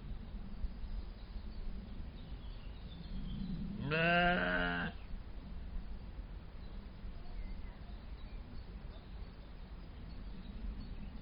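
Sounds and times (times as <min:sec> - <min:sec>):
low rumbling noise: 0:00.0 - 0:11.1
captive Soay sheep bleating in a zoo in Germany: 0:03.8 - 0:05.0.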